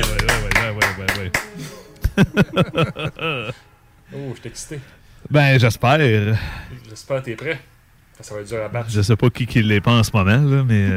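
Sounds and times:
sharp evenly spaced hand claps: 0:00.0 - 0:02.2
laughter: 0:00.0 - 0:03.7
speech: 0:02.2 - 0:10.9.

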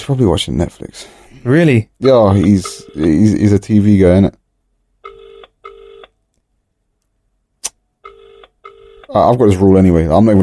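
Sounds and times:
speech: 0:00.0 - 0:04.4, 0:09.1 - 0:10.4
phone ringback tone on an outgoing call: 0:02.6 - 0:03.2, 0:05.0 - 0:06.1, 0:08.0 - 0:09.2
sharp click on a phone line: 0:07.6 - 0:07.8.

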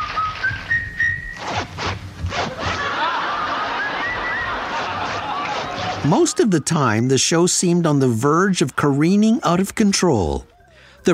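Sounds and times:
several people whistling a tune together: 0:00.0 - 0:01.4, 0:03.6 - 0:04.8
pant zippers rasping in rhythmic bursts: 0:01.4 - 0:02.8
people laughing: 0:02.4 - 0:06.9
noisy crowded backdrop: 0:02.4 - 0:11.1
speech: 0:06.0 - 0:11.1.

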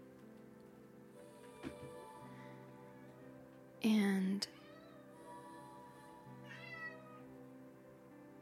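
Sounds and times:
speech: 0:01.6 - 0:02.0
two cats meowing back and forth: 0:04.5 - 0:05.1, 0:06.4 - 0:07.2.

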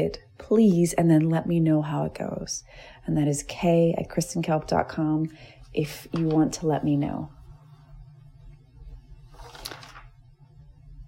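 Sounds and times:
speech: 0:00.0 - 0:07.4
steady low hum: 0:00.0 - 0:11.0
crisp rustle of paper notes being turned over: 0:06.1 - 0:06.6, 0:09.2 - 0:10.3.

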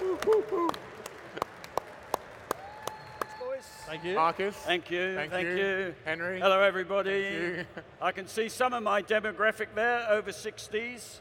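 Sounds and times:
scattered isolated audience claps: 0:00.0 - 0:03.4
speech: 0:03.9 - 0:11.1.

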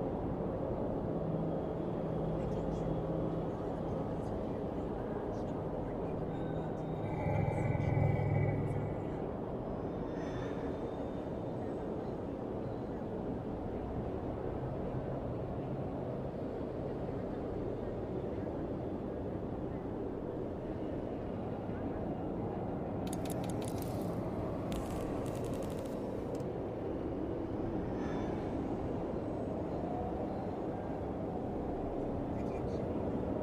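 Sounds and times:
dense low rumble of traffic and machinery in a futuristic city: 0:00.0 - 0:33.4
murmured voices: 0:04.3 - 0:12.5.

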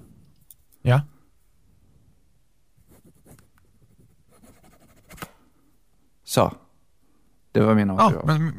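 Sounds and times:
speech: 0:00.9 - 0:01.1, 0:06.3 - 0:06.6, 0:07.6 - 0:08.5
pen signing on a paper receipt: 0:02.8 - 0:05.3.

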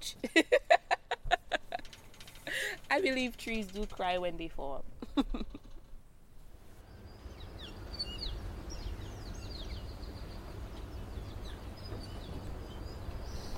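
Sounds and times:
steady low ambient hum: 0:00.0 - 0:13.5
laughter: 0:00.2 - 0:01.8, 0:05.0 - 0:05.8
speech: 0:03.0 - 0:05.6
small birds chirping in a rainforest canopy: 0:06.8 - 0:13.5.

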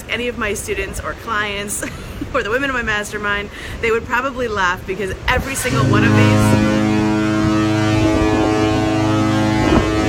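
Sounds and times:
wind: 0:00.0 - 0:10.0
speech: 0:00.1 - 0:06.6
deep sustained foghorn blast: 0:05.4 - 0:10.0.

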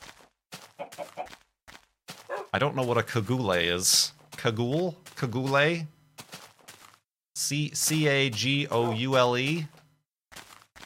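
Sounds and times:
chickens clucking: 0:00.8 - 0:01.4
speech: 0:02.5 - 0:06.0, 0:07.5 - 0:09.8.

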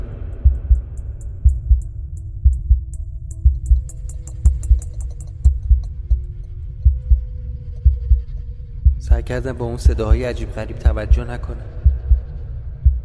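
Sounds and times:
low hum: 0:00.0 - 0:13.0
deep heartbeat sound effect pounding: 0:00.4 - 0:09.2, 0:09.8 - 0:13.0
speech: 0:09.2 - 0:11.8.

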